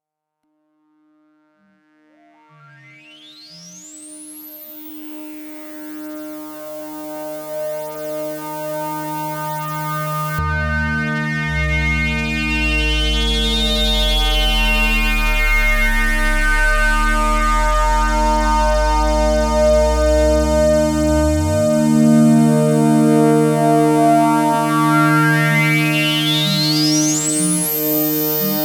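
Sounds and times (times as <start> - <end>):
band-pass filtered synthesizer pad: 4.2 - 28.6.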